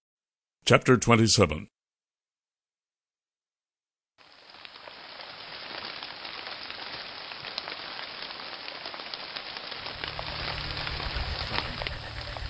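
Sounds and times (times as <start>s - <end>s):
speech: 0.7s - 1.8s
heavy rain splattering: 4.2s - 12.4s
low rumble: 9.8s - 12.4s.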